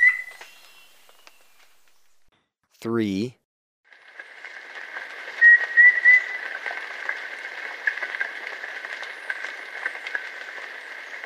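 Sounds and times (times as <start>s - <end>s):
Yellow-breasted antpitta giving short clear whistles in Ecuador: 0.0s - 1.6s, 5.4s - 6.4s
speech: 2.8s - 3.4s.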